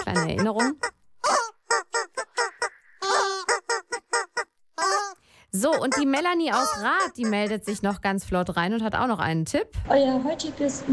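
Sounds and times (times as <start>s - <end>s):
squeaky rubber chicken toy playing a melody: 0.0s - 8.0s
speech: 0.1s - 1.0s, 5.5s - 10.9s.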